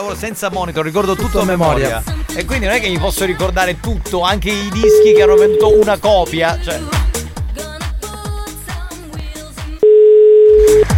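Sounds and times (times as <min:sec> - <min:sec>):
speech: 0:00.0 - 0:07.0
rhythmic beat-driven music: 0:00.2 - 0:09.8
telephone ringback tone on an outgoing call: 0:04.9 - 0:05.9, 0:09.8 - 0:10.9.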